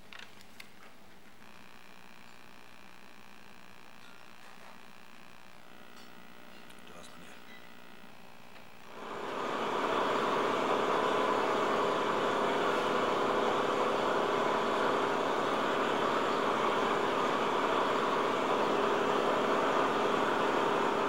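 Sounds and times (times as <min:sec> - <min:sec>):
fishing boat engine idling on the ocean: 0:09.0 - 0:21.0.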